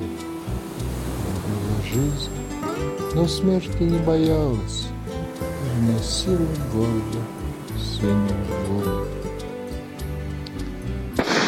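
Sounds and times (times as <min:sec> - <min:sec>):
low steady tonal background: 0:00.0 - 0:11.4
speech: 0:01.9 - 0:02.4, 0:03.1 - 0:04.9, 0:05.8 - 0:07.4, 0:08.0 - 0:09.2
gunshot: 0:11.2 - 0:11.4.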